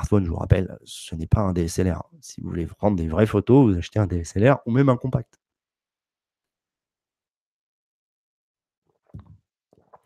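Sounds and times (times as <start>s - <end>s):
speech: 0.1s - 5.4s
person drinking with swallowing and gulping: 8.9s - 10.0s.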